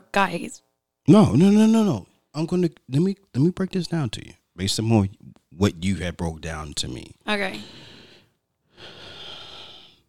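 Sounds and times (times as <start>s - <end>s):
speech: 0.2s - 7.9s
deep breath: 7.5s - 10.0s.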